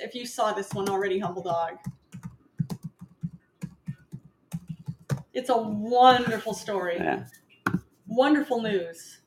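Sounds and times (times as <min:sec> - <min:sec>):
speech: 0:00.0 - 0:02.0, 0:05.4 - 0:07.4, 0:08.2 - 0:09.2
typing on a computer keyboard: 0:00.6 - 0:05.4.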